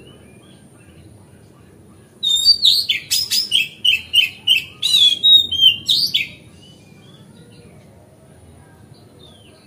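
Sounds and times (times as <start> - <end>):
Oriental magpie-robin song of varied whistled phrases and scratchy notes on a terrace: 0.0 - 1.2, 2.1 - 7.9.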